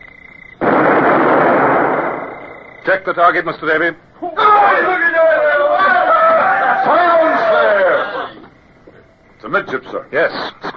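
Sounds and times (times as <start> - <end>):
ship's cannon firing on an enemy vessel: 0.6 - 2.8
faint steady tone: 1.9 - 10.7
speech: 2.9 - 5.4, 9.4 - 10.7.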